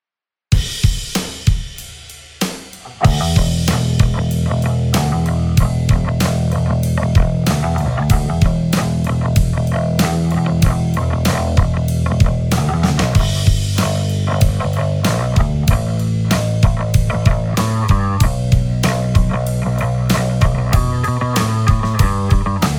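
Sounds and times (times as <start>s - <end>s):
blues rock lick: 0.6s - 22.7s.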